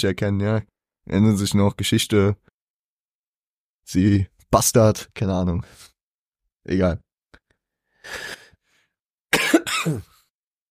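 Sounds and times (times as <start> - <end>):
speech: 0.0 - 2.5, 3.9 - 5.9, 6.6 - 7.0, 8.0 - 8.4, 9.8 - 10.1
raspy harsh coughing fit: 9.3 - 10.3.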